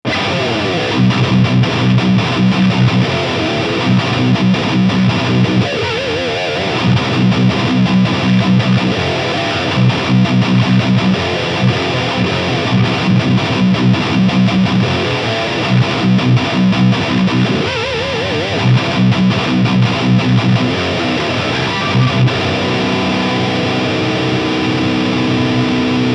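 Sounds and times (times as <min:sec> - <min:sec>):
Schecter SLS Elite C-7 electric guitar with high gain: 0:00.0 - 0:26.1.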